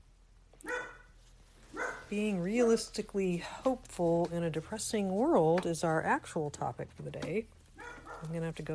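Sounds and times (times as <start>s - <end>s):
dog barking: 0.6s - 1.1s, 1.7s - 2.1s, 7.8s - 8.3s
speech: 2.1s - 7.6s, 8.2s - 8.7s.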